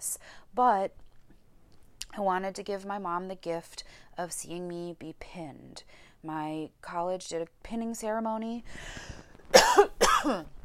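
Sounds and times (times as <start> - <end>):
speech: 0.6 - 1.0, 2.2 - 9.2, 9.8 - 10.6
person coughing forcefully: 9.5 - 10.5.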